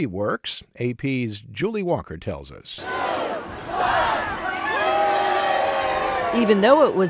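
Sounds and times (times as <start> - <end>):
speech: 0.0 - 4.1, 6.3 - 7.0
large crowd cheering and whooping in Times Square: 2.8 - 7.0.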